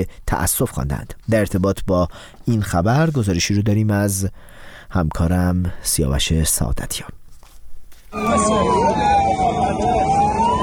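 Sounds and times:
speech: 0:00.0 - 0:07.2
ambulance siren wailing: 0:08.2 - 0:10.6
commotion: 0:08.2 - 0:10.6.

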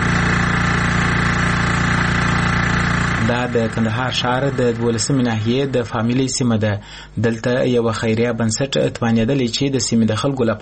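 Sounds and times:
generator engine running at a clean-water point: 0:00.0 - 0:07.8
speech: 0:03.3 - 0:10.5.

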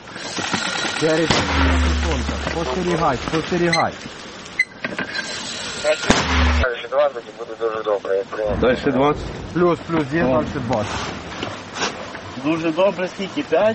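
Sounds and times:
artillery gun firing a heavy booming blast: 0:00.3 - 0:03.1, 0:06.0 - 0:06.7
speech: 0:01.0 - 0:04.2, 0:05.8 - 0:11.2, 0:12.4 - 0:13.7.

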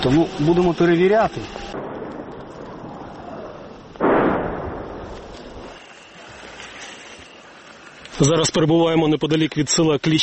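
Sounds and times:
speech: 0:00.0 - 0:01.6, 0:08.2 - 0:10.2
steady wind-like noise: 0:00.0 - 0:10.2
artillery fire boom near a battlefield village: 0:01.7 - 0:05.8.

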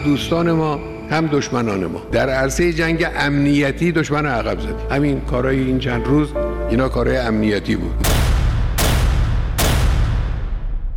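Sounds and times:
speech: 0:00.0 - 0:08.2
loud gunshots echoing in the street: 0:08.0 - 0:10.8.

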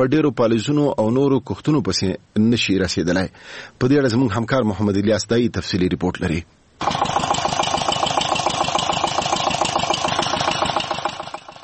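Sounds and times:
speech: 0:00.0 - 0:07.1
water pump engine drawing water from deep wells to irrigate melon fields: 0:06.8 - 0:11.6.

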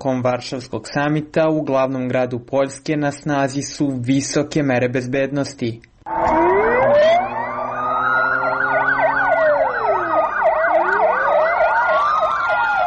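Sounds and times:
speech: 0:00.0 - 0:05.9
police car siren wailing on patrol through a city under summit security: 0:06.1 - 0:12.8.

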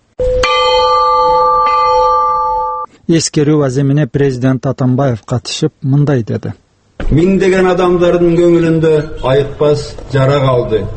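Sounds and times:
memorial peace bell ringing in Osh city: 0:00.2 - 0:02.9
speech: 0:03.1 - 0:10.9.

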